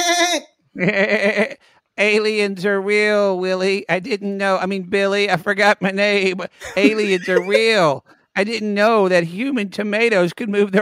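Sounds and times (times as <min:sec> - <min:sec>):
goat bleating: 0:00.0 - 0:01.6, 0:06.8 - 0:07.6
speech: 0:00.4 - 0:10.8
laughter: 0:06.6 - 0:07.8.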